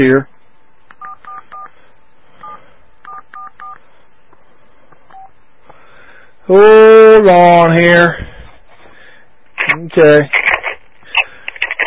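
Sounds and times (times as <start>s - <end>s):
speech: 0.0s - 0.3s, 6.5s - 8.3s, 9.7s - 10.5s
telephone keypad dialing tones: 1.0s - 1.7s, 2.4s - 3.8s.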